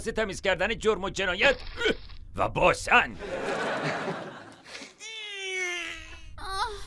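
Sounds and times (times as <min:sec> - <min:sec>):
speech: 0:00.0 - 0:04.3
laughter: 0:03.2 - 0:04.9
baby crying: 0:05.0 - 0:06.8.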